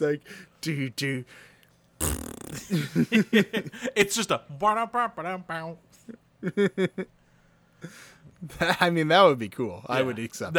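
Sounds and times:
speech: 0.0 - 7.2, 7.8 - 10.5
person making fart noise with mouth: 2.0 - 2.7.

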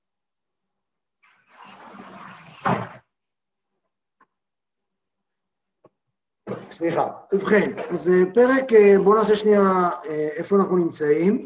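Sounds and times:
window closing: 1.2 - 3.1
window sliding with a rough rushing scrape: 1.3 - 3.0
speech: 6.8 - 11.4.

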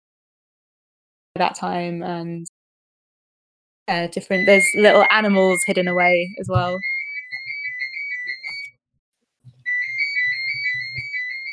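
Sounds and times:
speech: 1.4 - 2.6, 3.9 - 6.9
landline telephone ringing in long electronic trills: 4.4 - 8.7, 9.7 - 11.5.

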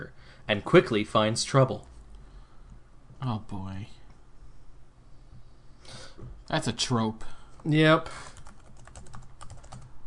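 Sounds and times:
speech: 0.0 - 1.9, 3.2 - 4.0, 5.9 - 8.3
typing on a computer keyboard: 8.2 - 9.9.

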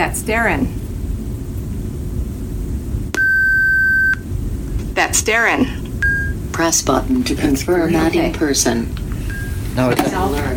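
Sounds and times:
speech: 0.0 - 0.8, 5.0 - 5.8, 6.6 - 9.0, 9.8 - 10.5
low rumbling noise: 0.0 - 10.5
electronic beep from a device in teaching mode: 3.2 - 4.2, 6.0 - 6.4.

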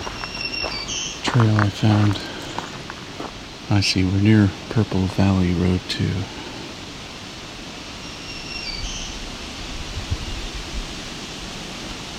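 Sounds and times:
distant thrush singing thin whistled phrases: 0.0 - 3.7, 7.9 - 10.8
steady broadband outdoor noise: 0.0 - 12.1
speech: 1.3 - 2.3, 3.7 - 6.4.

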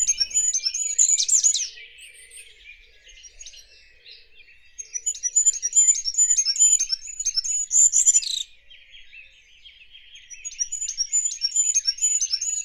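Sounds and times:
goldcrest singing: 0.0 - 12.6.

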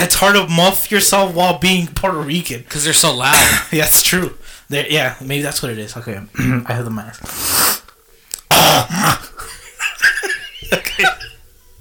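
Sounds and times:
speech: 0.0 - 7.6
throat clearing: 8.5 - 9.4
laughter: 9.3 - 11.4.

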